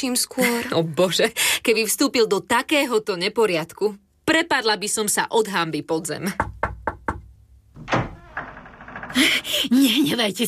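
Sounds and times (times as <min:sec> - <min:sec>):
speech: 0:00.0 - 0:06.6, 0:09.1 - 0:10.4
knocking on a door: 0:06.4 - 0:09.5.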